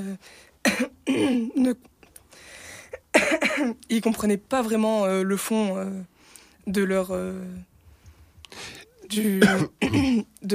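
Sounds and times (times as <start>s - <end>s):
speech: 0.0s - 1.9s, 3.2s - 7.7s, 8.5s - 10.5s
cough: 0.6s - 1.6s, 3.1s - 3.8s, 9.4s - 10.3s
rough throat clearing: 9.4s - 10.3s.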